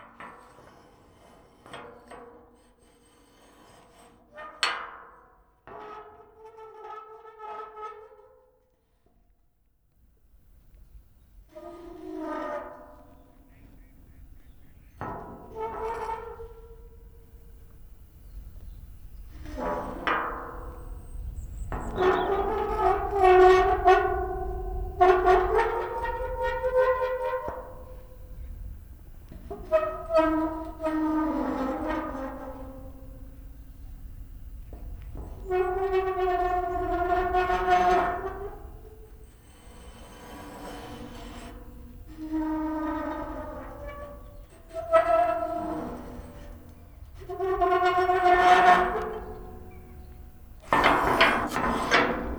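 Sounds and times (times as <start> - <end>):
gate: 14.7 - 52.3.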